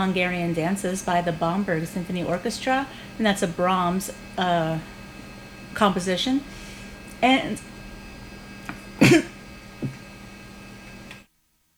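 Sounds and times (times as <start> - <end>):
speech: 0.0 - 5.0, 5.8 - 6.6, 7.2 - 7.7
person coughing in a brief coughing fit: 9.0 - 10.0.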